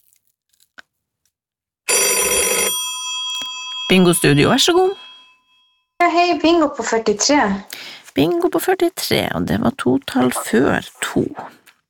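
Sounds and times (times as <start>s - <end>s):
loud bright telephone bell ringing in a bingo call-in studio: 1.9s - 6.0s
speech: 3.9s - 5.0s, 6.1s - 11.6s.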